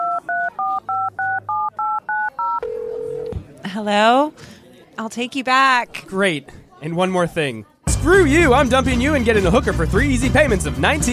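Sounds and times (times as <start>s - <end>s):
single sustained lower tone on the telephone line: 0.0s - 3.4s
speech: 3.8s - 11.1s.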